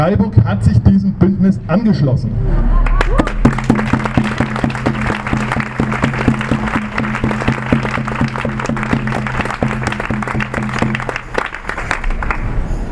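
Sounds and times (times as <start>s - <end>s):
speech: 0.0s - 2.8s
low hum: 0.7s - 12.9s
audience applause: 2.8s - 12.9s.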